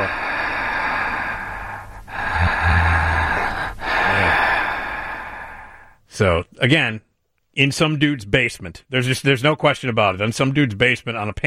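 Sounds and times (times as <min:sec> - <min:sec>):
heavy breathing on a tape recording: 0:00.0 - 0:06.0
steady hum: 0:00.0 - 0:06.4
speech: 0:06.2 - 0:11.4.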